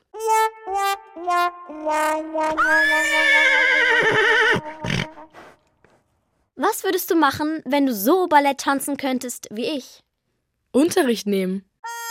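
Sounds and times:
speech: 1.2s - 5.4s, 6.6s - 10.0s, 10.7s - 12.0s
horse neighing: 2.6s - 5.3s
horse snorting: 4.6s - 5.6s.

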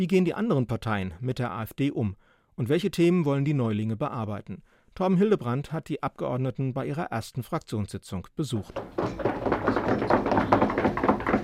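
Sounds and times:
speech: 0.0s - 9.3s
politicians rapping their knuckles on tables in approval: 8.7s - 11.4s.

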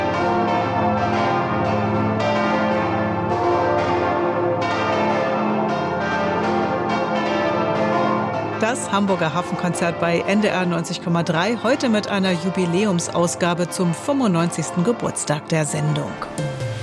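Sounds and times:
several large church bells ringing in a dense overlapping peal: 0.0s - 16.7s
speech: 8.7s - 16.5s.

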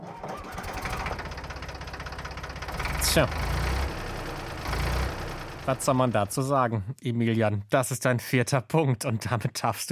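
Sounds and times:
tractor engine chugging: 0.2s - 6.4s
speech: 3.0s - 3.6s, 5.6s - 9.9s.

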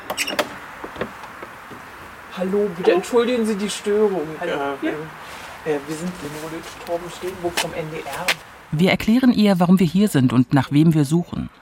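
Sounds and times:
front door knocks and creaks as it swings: 0.0s - 2.2s
speech: 0.2s - 0.5s, 2.4s - 11.5s.

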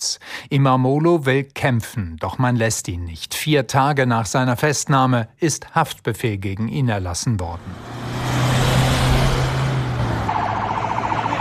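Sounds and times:
speech: 0.5s - 8.1s
convoy of dozens of cars carrying detainees rumbling past near Silivri: 7.5s - 11.3s
rapid warbling siren: 10.2s - 11.3s.

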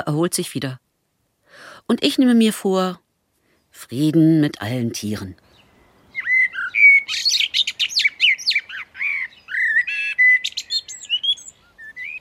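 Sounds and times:
speech: 0.0s - 0.8s, 1.6s - 3.0s, 3.8s - 5.4s
blackbird singing: 5.3s - 12.1s.

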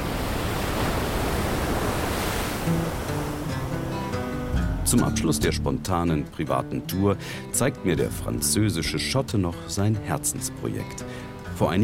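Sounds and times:
sea surf waves breaking: 0.0s - 5.4s
speech: 4.9s - 11.8s.

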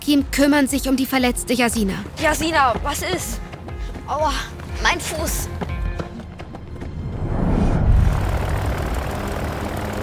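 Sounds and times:
speech: 0.1s - 3.5s, 4.1s - 5.7s
propeller plane engine starting up in a hangar: 7.8s - 10.0s.

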